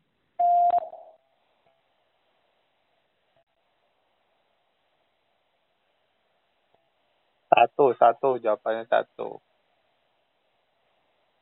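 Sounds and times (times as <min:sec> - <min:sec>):
electronic quiz answer prompt beep tone: 0:00.4 - 0:01.1
speech: 0:07.6 - 0:09.5.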